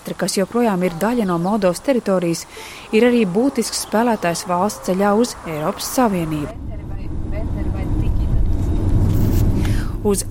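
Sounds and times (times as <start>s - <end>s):
speech: 0.1s - 6.8s, 10.0s - 10.2s
car with diplomatic plates driving on a road in Moldova, engine and tire drone: 4.5s - 10.2s.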